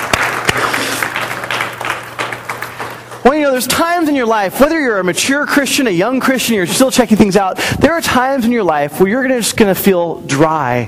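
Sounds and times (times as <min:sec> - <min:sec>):
audience applause for a reader: 0:00.0 - 0:03.4
low constant hum: 0:00.0 - 0:10.8
speech: 0:03.2 - 0:10.8.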